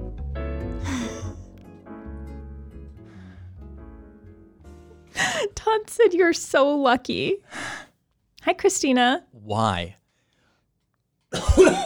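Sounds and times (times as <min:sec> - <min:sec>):
speech: 0:05.4 - 0:07.8, 0:08.4 - 0:10.0, 0:11.3 - 0:11.8
person coughing: 0:11.3 - 0:11.8.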